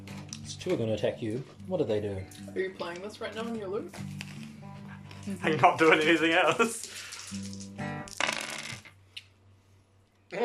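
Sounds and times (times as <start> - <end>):
speech: 0.6 - 4.2, 5.3 - 7.6
dice clattering into a dice bin during a tabletop role-playing game: 6.8 - 8.9.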